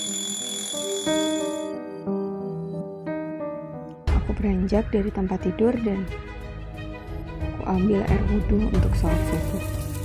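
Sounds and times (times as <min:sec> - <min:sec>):
melodic electronic alarm clock tone: 0:00.0 - 0:02.9
speech: 0:04.4 - 0:06.4, 0:07.7 - 0:09.8.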